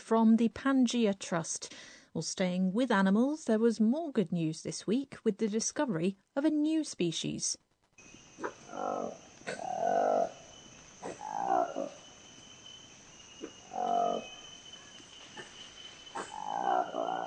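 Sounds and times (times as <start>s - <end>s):
speech: 0.1s - 7.6s, 8.8s - 10.4s
steady high insect-like hum: 8.0s - 17.2s
Lekwele monkey roaring: 8.4s - 12.2s, 13.4s - 14.4s, 15.3s - 17.2s.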